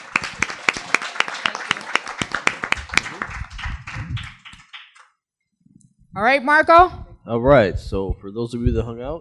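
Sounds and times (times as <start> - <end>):
audience applause for a speech: 0.0 - 5.2
speech: 6.2 - 9.1.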